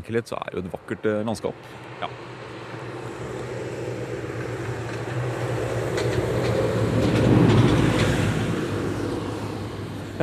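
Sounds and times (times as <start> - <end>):
speech: 0.0 - 2.5
tractor engine drone driving past: 0.0 - 10.2.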